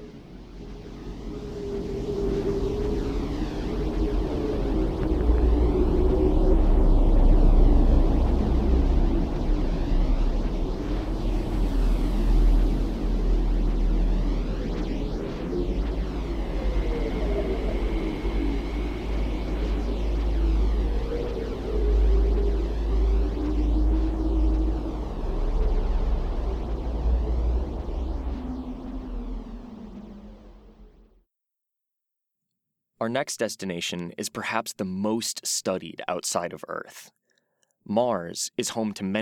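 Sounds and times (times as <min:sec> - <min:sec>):
wash of hissing static from Earth's radio emissions: 0:00.0 - 0:31.0
faint gliding whistles from Earth's radio emissions: 0:00.0 - 0:31.2
steady low hum of Earth's radio emissions: 0:00.0 - 0:31.2
speech: 0:33.0 - 0:37.2, 0:37.9 - 0:39.1.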